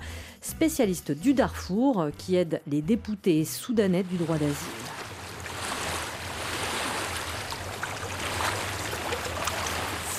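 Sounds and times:
speech: 0.6s - 4.8s
ocean waves on a small sand island off Côte d'Ivoire: 3.7s - 10.1s.

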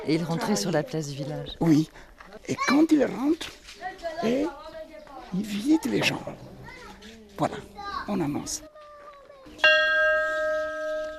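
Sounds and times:
speech: 0.0s - 4.7s, 5.3s - 8.7s
single bell struck with bright metallic tone: 9.6s - 11.1s.

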